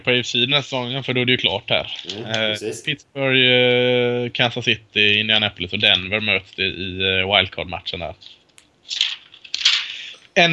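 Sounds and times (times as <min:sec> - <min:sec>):
speech: 0:00.0 - 0:09.1, 0:10.4 - 0:10.5
papers being leafed through: 0:01.8 - 0:02.4, 0:08.1 - 0:10.4.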